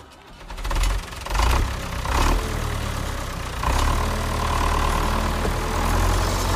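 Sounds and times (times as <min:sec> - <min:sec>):
tractor engine starting and idling: 0:00.0 - 0:06.5.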